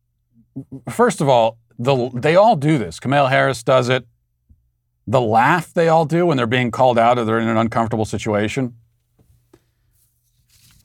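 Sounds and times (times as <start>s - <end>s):
speech: 0.5s - 4.1s, 5.1s - 8.8s
piece of paper tearing: 10.3s - 10.8s.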